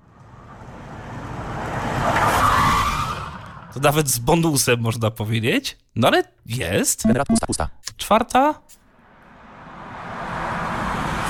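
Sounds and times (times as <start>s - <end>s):
road rush: 0.0s - 3.8s, 8.9s - 11.2s
car driving past: 0.1s - 3.7s, 8.9s - 11.2s
speech: 3.8s - 8.8s.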